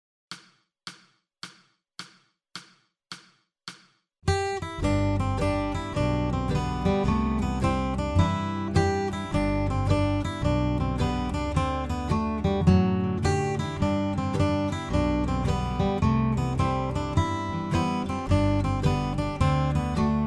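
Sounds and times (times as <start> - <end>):
slow hoedown guitar harmony: 4.3 - 20.2.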